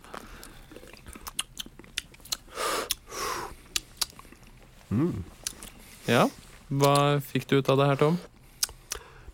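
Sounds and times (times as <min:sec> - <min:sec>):
lip smacks and clicks while tasting beer: 0:00.1 - 0:03.1, 0:03.7 - 0:04.6, 0:06.8 - 0:07.1, 0:08.6 - 0:09.1
speech: 0:04.9 - 0:05.4, 0:06.1 - 0:08.3.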